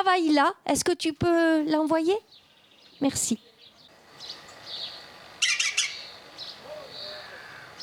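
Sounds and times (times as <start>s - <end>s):
speech: 0.0s - 2.4s, 3.0s - 3.4s
soft outdoor hiss: 0.0s - 7.8s
green woodpecker squawking calls: 2.3s - 7.8s.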